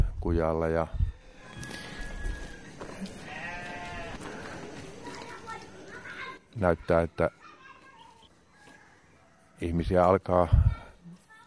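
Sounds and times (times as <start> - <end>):
outdoor noise in a village alley: 0.0 - 11.4
speech: 0.2 - 1.1, 6.6 - 7.4, 9.6 - 10.7
goats bleating in a village alley: 1.6 - 6.1.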